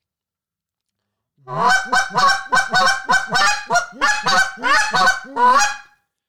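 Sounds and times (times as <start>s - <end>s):
goose call blowing clucks and double clucks: 1.5s - 5.8s.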